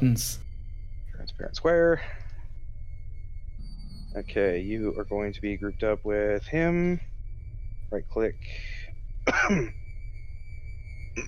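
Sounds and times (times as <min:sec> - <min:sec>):
speech: 0:00.0 - 0:00.4, 0:01.3 - 0:02.2, 0:04.2 - 0:07.1, 0:07.9 - 0:09.8
quiet hum: 0:00.0 - 0:11.2
person coughing: 0:09.3 - 0:09.7.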